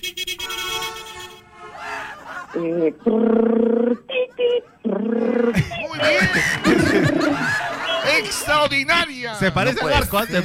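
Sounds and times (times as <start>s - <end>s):
laughter: 1.7s - 3.3s, 3.9s - 8.9s, 9.6s - 10.4s
speech: 2.5s - 7.2s, 8.2s - 10.4s
voice imitating a mototaxi engine straining uphill: 2.8s - 6.0s.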